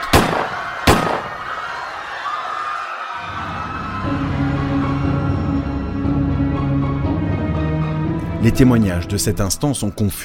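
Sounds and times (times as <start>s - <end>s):
gunshots fired at a crowded dance venue: 0.0s - 1.7s
panicked crowd noise at a festive dance venue: 0.0s - 7.2s
speech: 8.4s - 10.2s.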